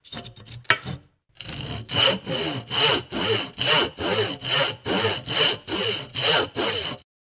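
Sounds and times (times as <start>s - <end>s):
handsaw cutting wood: 1.4s - 7.1s.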